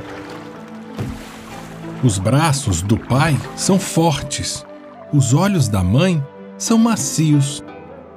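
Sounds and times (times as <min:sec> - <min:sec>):
bamboo oar stroke splash: 0:00.0 - 0:05.1
water sloshing around a small boat: 0:00.0 - 0:06.0
speech: 0:02.0 - 0:07.7.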